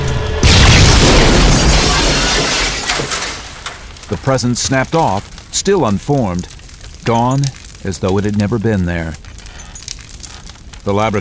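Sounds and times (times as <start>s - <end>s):
grenade blast in a laboratory chamber holding cell samples: 0.3s - 5.5s
speech: 4.1s - 9.2s, 10.8s - 11.2s.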